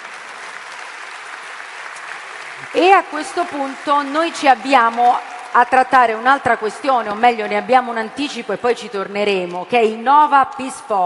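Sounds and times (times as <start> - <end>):
audience applauding a speaker at a forum event: 0.0 - 6.4
speech: 2.7 - 11.0.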